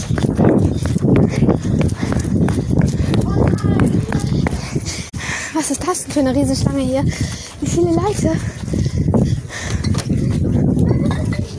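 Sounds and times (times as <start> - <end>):
running footsteps on hard pavement crossing a street: 0.0 - 11.5
speech: 5.9 - 8.6.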